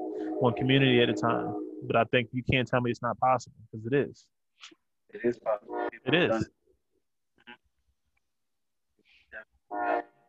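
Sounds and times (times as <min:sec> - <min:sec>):
passing train horn blast: 0:00.0 - 0:02.0, 0:05.5 - 0:06.4, 0:09.7 - 0:10.2
speech: 0:00.4 - 0:06.6.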